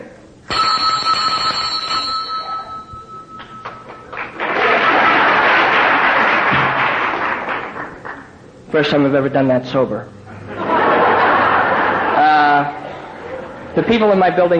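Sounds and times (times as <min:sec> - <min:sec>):
hand-rung altar bell: 0:00.5 - 0:04.4
laughter: 0:04.4 - 0:06.9, 0:10.3 - 0:14.1
speech: 0:08.8 - 0:10.2, 0:13.8 - 0:14.5.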